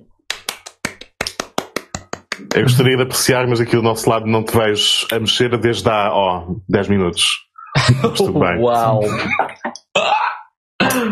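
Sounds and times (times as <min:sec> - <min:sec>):
sharp crisp hand claps: 0:00.3 - 0:02.8
speech: 0:02.4 - 0:10.2
laughter: 0:07.7 - 0:09.8.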